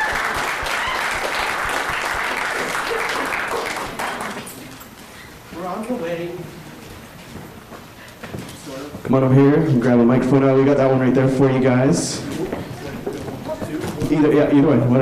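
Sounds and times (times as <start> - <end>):
audience applause and cheering: 0.0 - 4.6
speech: 9.1 - 12.4, 14.1 - 15.0.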